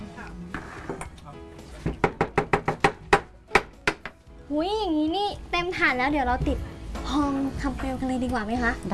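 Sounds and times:
wooden mold rapped against a surface to release Thai sweets: 1.8 - 4.2
speech: 4.5 - 8.9.

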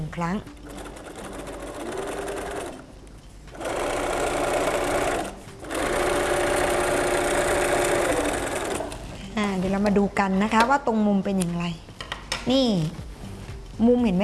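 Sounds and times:
speech: 0.2 - 0.6, 9.8 - 11.8, 12.4 - 13.0, 13.8 - 14.2
sewing machine stitching thick fabric: 0.5 - 2.8, 3.6 - 9.1.

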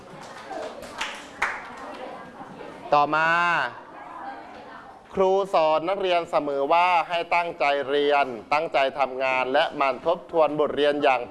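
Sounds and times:
small group of students clapping: 0.0 - 2.4
low murmur of room noise: 0.0 - 11.2
speech: 2.9 - 3.8, 5.2 - 11.2.

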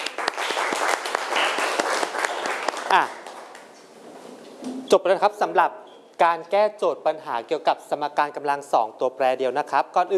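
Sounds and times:
roomful of people clapping in a classroom: 0.0 - 3.8
speech: 2.9 - 3.2, 4.9 - 10.1.

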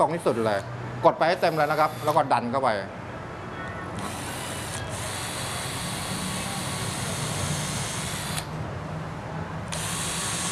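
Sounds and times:
speech: 0.0 - 3.0
power drill boring into wood: 1.4 - 2.2, 4.0 - 8.5, 9.7 - 10.5.

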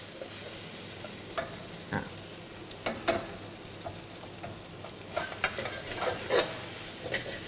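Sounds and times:
bean sprouts and sauce sizzling in a pan: 0.0 - 7.4
utensil scraping and tapping against a stir-fry pan: 2.8 - 7.4.

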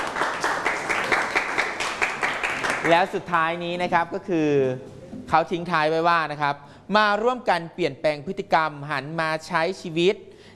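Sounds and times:
audience applauding after a presentation: 0.0 - 3.1
speech: 2.8 - 10.3.

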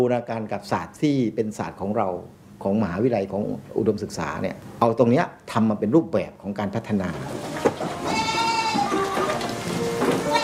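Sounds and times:
speech: 0.0 - 7.4
soft hiss of noise: 0.0 - 10.4
goats bleating: 7.3 - 10.4.

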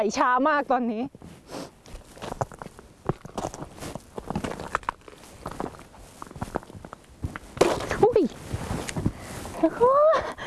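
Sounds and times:
speech: 0.0 - 1.7, 9.6 - 10.3
slow shuffling footsteps crunching on frozen river ice: 1.9 - 9.1.

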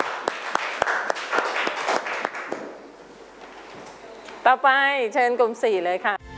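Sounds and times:
audience applauding a student group: 0.0 - 2.8
speech: 4.4 - 6.2.

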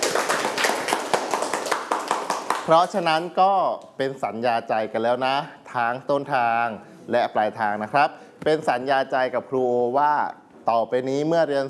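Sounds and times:
class of students clapping hands for themselves: 0.0 - 2.9
speech: 2.7 - 11.6.

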